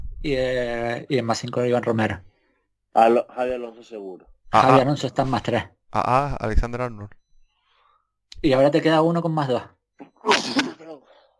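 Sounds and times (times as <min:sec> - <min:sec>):
speech: 0:00.2 - 0:02.3, 0:02.9 - 0:07.2, 0:08.4 - 0:11.0
loud sneeze: 0:10.2 - 0:10.9.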